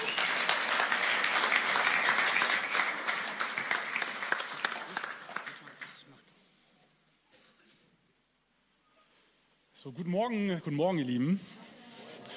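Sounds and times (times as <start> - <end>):
crowd clapping: 0.0 - 6.2
speech: 9.8 - 11.6.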